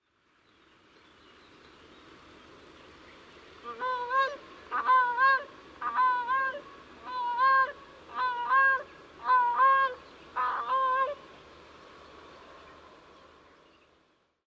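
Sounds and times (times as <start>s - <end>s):
Grey Crowned Crane Balearica regulorum calling in Busatello Verona Italy: 3.6s - 11.3s.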